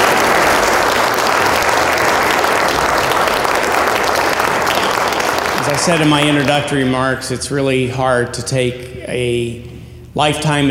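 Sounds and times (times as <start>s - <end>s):
room full of people applauding: 0.0s - 6.9s
speech: 5.8s - 10.7s.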